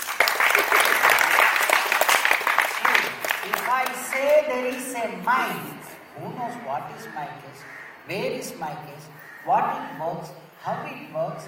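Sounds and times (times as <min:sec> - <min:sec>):
audience clapping: 0:00.0 - 0:05.0
speech: 0:03.5 - 0:11.4.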